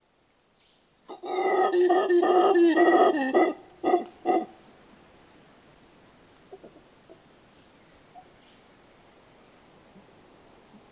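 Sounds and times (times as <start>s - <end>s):
mantled howler monkey Alouatta palliata howling: 1.1s - 4.6s.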